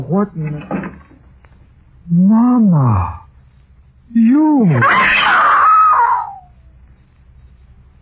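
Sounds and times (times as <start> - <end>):
speech: 0.1 - 0.8, 2.1 - 3.2, 4.1 - 5.4
person screaming: 4.7 - 6.4.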